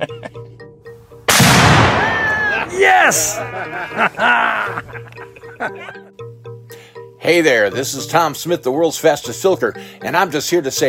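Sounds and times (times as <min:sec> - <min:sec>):
loud explosion: 0:01.3 - 0:02.7
laughter: 0:02.3 - 0:06.1
speech: 0:02.7 - 0:06.0, 0:07.2 - 0:10.8.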